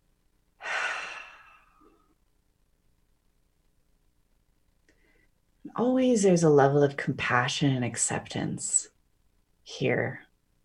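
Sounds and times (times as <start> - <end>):
deep breath: 0.6 - 2.1, 4.9 - 5.4
speech: 5.8 - 8.9, 9.7 - 10.2.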